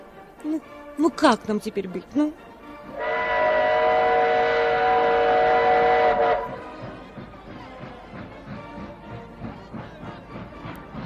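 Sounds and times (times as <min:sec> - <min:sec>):
speech: 0:00.4 - 0:03.0
rail cars rumbling and clattering past: 0:01.0 - 0:11.0
whistle of an approaching train: 0:03.0 - 0:06.9.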